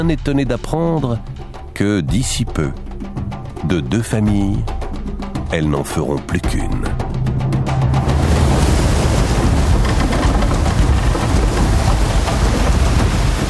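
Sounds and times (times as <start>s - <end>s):
speech: 0.0s - 2.8s, 3.6s - 4.8s, 5.5s - 7.0s
low rumbling of a storm at sea: 0.0s - 13.4s
heavy surf crashing on the African coast: 7.2s - 13.4s
pouring rain in a storm at sea: 7.8s - 13.4s.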